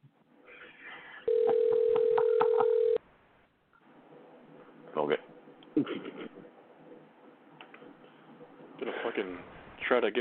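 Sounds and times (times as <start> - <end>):
telephone tone for an unanswered call with no voicemail: 1.2 - 3.0
speech: 9.2 - 10.1.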